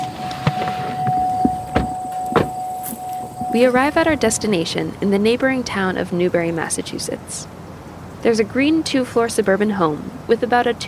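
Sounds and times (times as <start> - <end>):
pickup truck door thumps and clunks: 0.0 - 3.5
people climbing into a pickup truck: 0.0 - 4.4
steady high tone: 0.0 - 6.3
sharp knocks: 0.4 - 3.6
speech: 3.5 - 7.6, 8.2 - 10.8.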